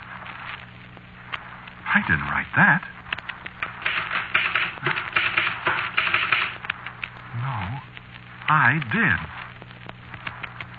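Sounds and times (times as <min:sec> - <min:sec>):
speech: 0:02.0 - 0:03.0, 0:08.5 - 0:09.4
mechanical typewriter keystrokes: 0:03.8 - 0:06.6.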